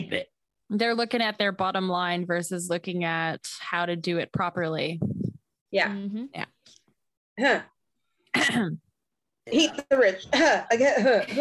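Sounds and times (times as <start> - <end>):
speech: 0.0 - 5.1, 5.7 - 6.8, 7.4 - 7.7, 8.4 - 8.8, 9.5 - 11.3
person coughing harshly: 8.3 - 8.8.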